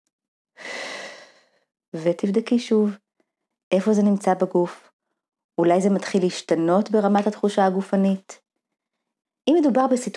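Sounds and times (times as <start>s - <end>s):
deep breath: 0.6s - 1.7s
speech: 1.9s - 3.0s, 3.7s - 4.9s, 5.6s - 8.4s, 9.5s - 10.1s.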